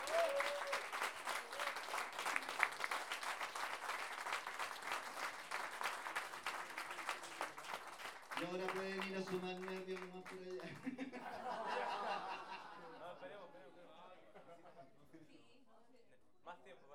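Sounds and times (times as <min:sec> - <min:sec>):
audience applause at a folk improvised-verse singing tournament: 0:00.0 - 0:10.9
speech: 0:08.4 - 0:12.5
laughter: 0:10.6 - 0:13.5.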